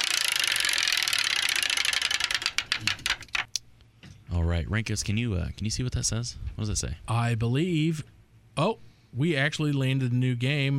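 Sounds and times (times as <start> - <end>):
game-show prize wheel spinning with ratcheting clicks: 0.0 - 3.6
speech: 2.8 - 3.2, 4.3 - 10.7.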